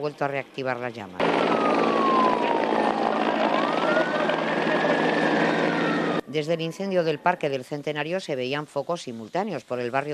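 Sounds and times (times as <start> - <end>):
speech: 0.0 - 2.1, 6.3 - 10.1
firefighting helicopters roaring overhead at Punta Carnero forest area: 0.0 - 6.2
faint wailing siren from the city: 1.2 - 7.7.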